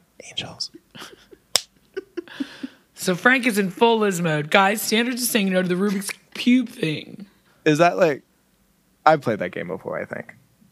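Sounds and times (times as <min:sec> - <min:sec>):
speech: 0:00.2 - 0:01.4, 0:02.3 - 0:08.3, 0:09.0 - 0:10.4
laughter: 0:00.9 - 0:01.4, 0:02.0 - 0:02.8
high-five hand slap: 0:01.5 - 0:01.7.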